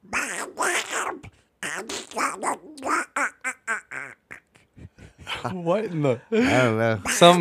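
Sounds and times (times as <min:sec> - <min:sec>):
person doing a raspy cartoon-duck voice impression: 0:00.0 - 0:05.0, 0:07.0 - 0:07.4
speech: 0:05.4 - 0:07.4.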